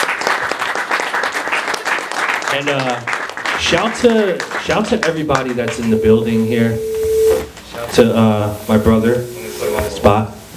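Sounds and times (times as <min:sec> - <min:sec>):
room full of people applauding: 0:00.0 - 0:06.0
speech: 0:02.5 - 0:06.9, 0:07.8 - 0:09.4, 0:10.0 - 0:10.4.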